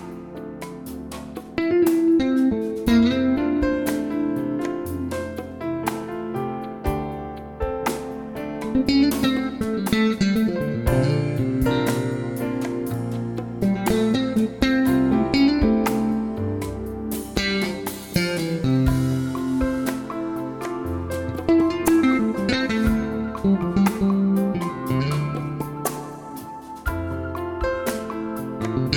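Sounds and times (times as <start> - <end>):
electric bass solo: 1.3 - 28.9.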